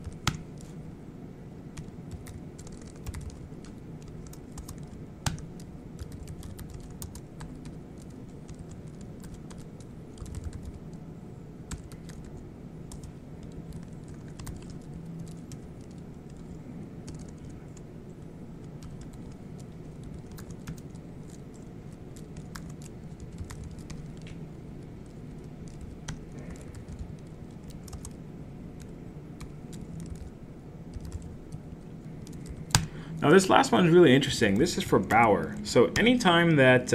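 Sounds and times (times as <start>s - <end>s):
low hum: 0.0s - 36.9s
rapid typing on a computer keyboard: 1.8s - 11.0s, 11.7s - 17.8s, 18.6s - 24.4s, 25.0s - 28.2s, 28.8s - 30.3s, 30.9s - 31.4s, 32.2s - 32.9s
speech: 33.3s - 36.9s.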